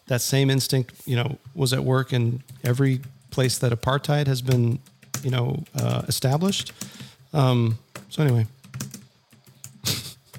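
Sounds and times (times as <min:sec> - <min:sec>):
speech: 0:00.1 - 0:08.6
typing on a computer keyboard: 0:02.3 - 0:10.3.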